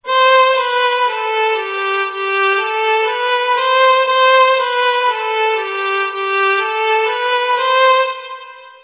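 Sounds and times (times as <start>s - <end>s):
high musical scale: 0.1s - 8.8s.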